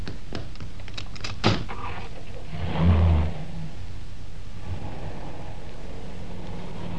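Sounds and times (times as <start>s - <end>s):
low car idle hum heard from inside the car: 2.1s - 6.9s.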